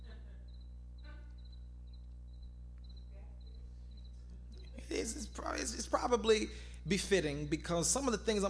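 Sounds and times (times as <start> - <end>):
low hum: 0.0 - 8.4
cricket chirping in a room: 0.4 - 5.3
speech: 4.8 - 8.4.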